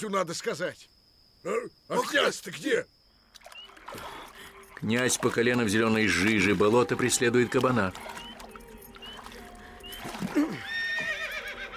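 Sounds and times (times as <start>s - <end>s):
speech: 0.0s - 3.0s, 4.8s - 8.2s
horse neighing and resisting: 10.0s - 11.7s.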